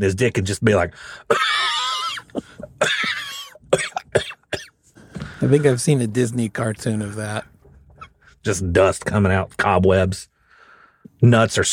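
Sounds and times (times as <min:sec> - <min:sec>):
speech: 0:00.0 - 0:01.7, 0:02.3 - 0:03.3, 0:05.4 - 0:07.6, 0:08.4 - 0:10.3, 0:11.2 - 0:11.7
person imitating a dry dusty cough: 0:01.3 - 0:04.7.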